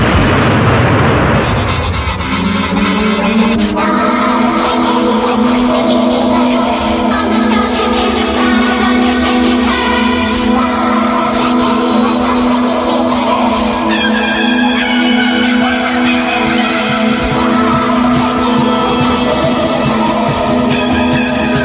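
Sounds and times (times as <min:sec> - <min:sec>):
loud rumbling explosion sound effect: 0:00.0 - 0:04.6
steady ringing electronic drone: 0:00.0 - 0:21.6.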